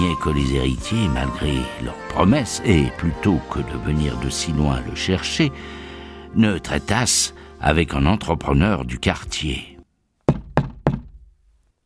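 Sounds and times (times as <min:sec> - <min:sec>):
speech: 0:00.0 - 0:09.7
firm knocks on a door: 0:10.3 - 0:11.3.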